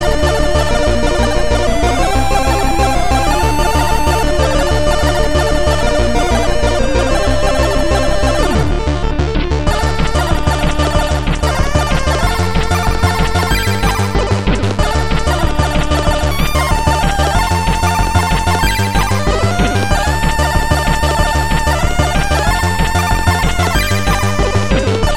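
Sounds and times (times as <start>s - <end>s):
bit keygen music: 0.0s - 25.1s.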